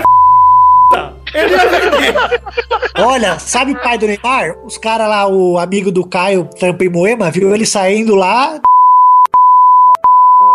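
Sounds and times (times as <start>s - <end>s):
censorship bleep tone over speech: 0.0s - 1.1s, 8.6s - 10.5s
laughter: 1.0s - 4.3s
speech: 1.4s - 8.7s.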